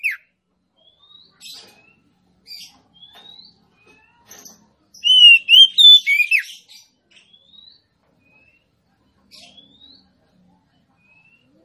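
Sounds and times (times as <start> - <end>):
female oriental magpie-robin whistled song: 5.0 - 6.5.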